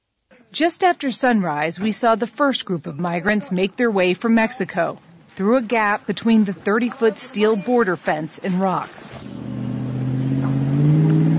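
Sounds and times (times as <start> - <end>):
speech: 0.5 - 9.5
SUV engine droning while racing along a steel border fence: 9.1 - 11.3.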